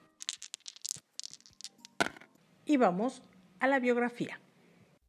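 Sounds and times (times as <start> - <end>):
dice thrown, rattling and tumbling: 0.0 - 2.3
speech: 2.7 - 4.4.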